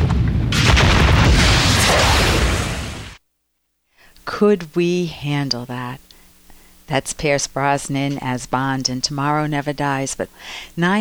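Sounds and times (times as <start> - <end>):
missile launch from a warship, film sound effect: 0.0 - 3.2
speech: 4.4 - 6.1, 6.9 - 10.9.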